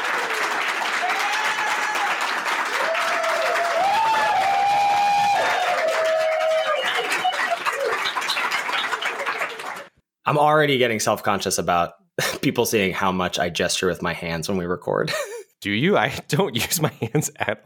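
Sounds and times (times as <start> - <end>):
crowd whistles and whoops: 0.0 - 9.9
dense sustained audience applause: 0.0 - 10.0
speech: 10.3 - 17.6.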